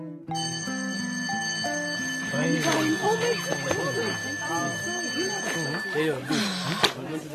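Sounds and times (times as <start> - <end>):
school bell ringing for class break: 0.3 - 6.4
voices chattering: 2.3 - 7.3.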